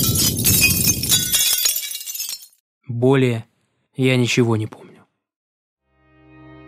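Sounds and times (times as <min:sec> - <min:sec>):
glass shattering into tiny tinkling shards: 0:00.0 - 0:02.6
speech: 0:03.0 - 0:04.9.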